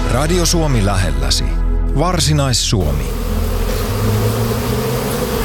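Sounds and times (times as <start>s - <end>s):
speech: 0.1s - 3.3s
honeybees buzzing at an apiary on the edge of a botanical garden: 2.8s - 5.4s.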